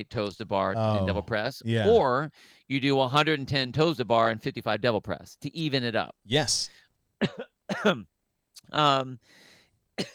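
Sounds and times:
speech: 0.0s - 10.1s
person coughing from choking on saliva: 7.2s - 8.0s, 10.0s - 10.1s.

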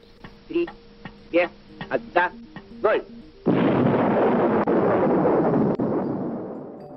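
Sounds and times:
person speaking: 0.5s - 3.2s
atomic bomb test explosion with sustained roaring rumble: 3.4s - 6.6s.

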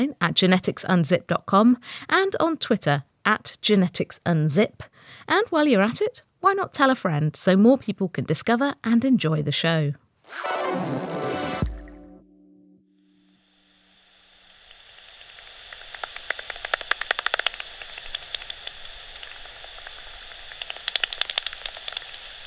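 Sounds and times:
speech: 0.0s - 11.1s
steady hiss: 13.2s - 22.4s
pipistrelle bat echolocation calls converted from ultrasound to audible sound: 15.1s - 22.3s.

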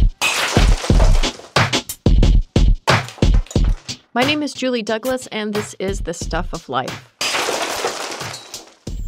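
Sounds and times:
glassware smashed with a baseball bat in a rage room in Atlanta: 0.2s - 1.6s, 3.0s - 4.0s, 7.2s - 8.9s
speech: 4.2s - 7.1s.

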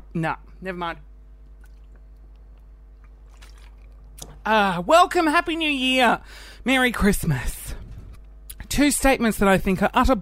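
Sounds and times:
low steady hum: 0.0s - 10.2s
speech: 0.2s - 1.1s, 4.4s - 7.6s, 8.7s - 10.2s
person drinking water with wet gulps: 1.4s - 4.4s.

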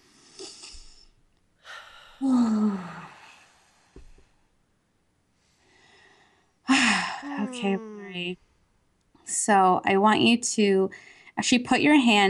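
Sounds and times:
deep breaths during a guided relaxation exercise: 0.8s - 4.3s, 5.4s - 8.7s
speech: 7.5s - 8.5s, 9.3s - 12.2s.

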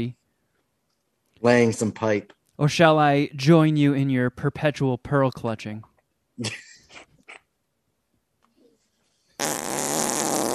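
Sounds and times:
speech: 0.0s - 0.2s, 1.4s - 7.1s, 9.4s - 9.6s
short raspy fart sound effects: 9.4s - 10.5s.

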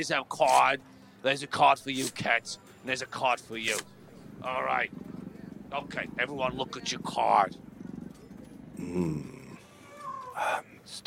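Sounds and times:
speech: 0.0s - 5.0s, 5.7s - 7.6s, 8.8s - 9.3s, 10.4s - 11.0s
people imitating cat purring: 3.6s - 10.8s
higher vocal sound: 8.8s - 9.7s.

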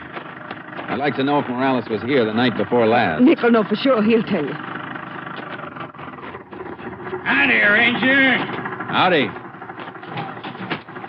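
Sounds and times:
car engine humming while driving across open ground: 0.0s - 11.0s
speech: 1.0s - 4.7s, 7.4s - 9.4s.

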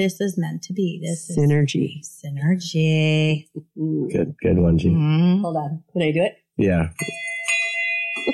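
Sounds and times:
speech: 0.0s - 7.2s
bell ding: 7.0s - 8.3s.

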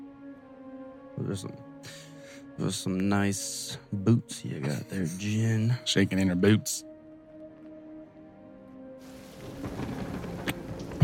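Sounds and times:
speech: 1.2s - 6.9s
rain falling on a planet in a video game: 9.0s - 11.0s.

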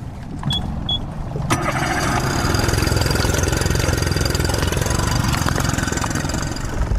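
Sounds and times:
motorboat engine rumbling: 0.0s - 6.9s.

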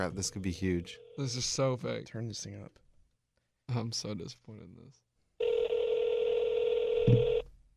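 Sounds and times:
speech: 0.0s - 2.8s, 3.7s - 5.0s, 7.1s - 7.3s
phone ringing through a speakerphone: 5.4s - 7.5s.

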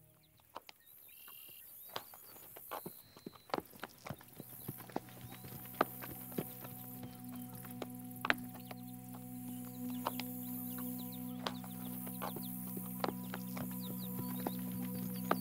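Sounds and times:
horse hooves clip-clopping at a walking pace: 0.3s - 15.4s
faint steady hum: 3.8s - 15.4s.

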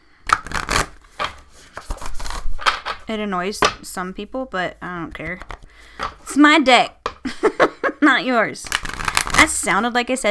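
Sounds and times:
deck of cards being riffle-shuffled: 0.2s - 3.0s, 5.2s - 6.2s, 8.6s - 9.7s
speech: 3.1s - 7.0s, 8.0s - 8.8s, 9.4s - 10.2s.

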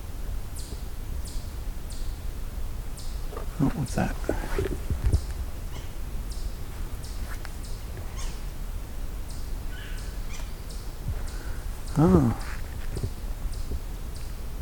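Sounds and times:
steady low outdoor rumble: 0.0s - 14.6s
yellow-bellied sapsuckers giving nasal mewing calls: 3.0s - 12.7s
speech: 3.6s - 5.1s, 12.0s - 12.6s.

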